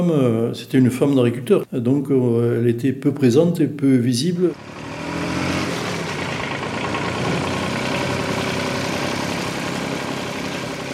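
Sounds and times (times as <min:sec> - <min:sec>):
speech: 0:00.0 - 0:04.8
tractor engine idling: 0:04.5 - 0:10.9.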